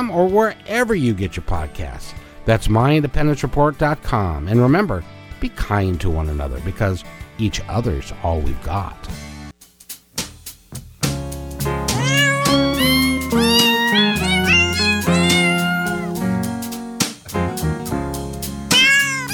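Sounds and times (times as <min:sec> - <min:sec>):
speech: 0:00.0 - 0:09.3
musical backing: 0:10.6 - 0:19.3
cats meowing: 0:11.9 - 0:16.2, 0:18.7 - 0:19.3.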